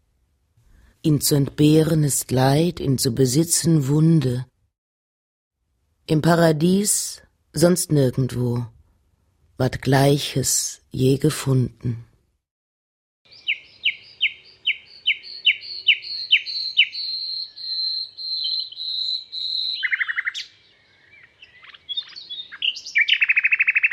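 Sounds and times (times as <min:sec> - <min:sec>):
speech: 0:01.0 - 0:04.5, 0:06.1 - 0:08.8, 0:09.6 - 0:12.1
birds singing with sliding chirps, whistles and buzzy trills: 0:13.3 - 0:23.9.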